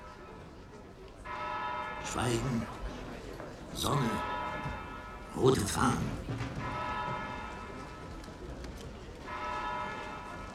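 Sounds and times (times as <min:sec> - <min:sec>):
church bell tolling the hour over a broad street: 0:01.3 - 0:03.0, 0:03.8 - 0:08.1, 0:09.2 - 0:10.5
speech: 0:02.0 - 0:02.8, 0:03.8 - 0:04.3, 0:05.4 - 0:06.7.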